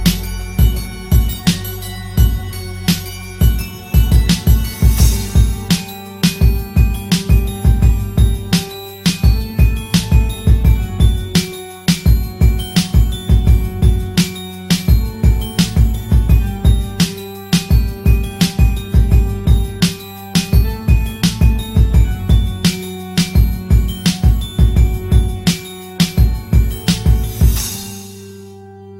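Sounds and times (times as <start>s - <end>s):
hard horror rap beat: 0.0s - 28.2s.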